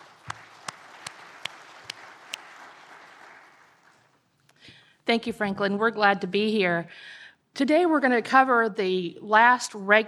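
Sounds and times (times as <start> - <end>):
audience applause: 0.0 - 4.2
sharp claps: 0.0 - 4.2
speech: 5.1 - 10.0.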